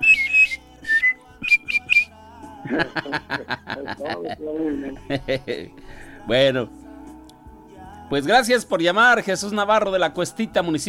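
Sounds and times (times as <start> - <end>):
person whistling: 0.0 - 2.2
person chuckling: 2.6 - 5.7
speech: 2.7 - 6.8, 8.1 - 10.8.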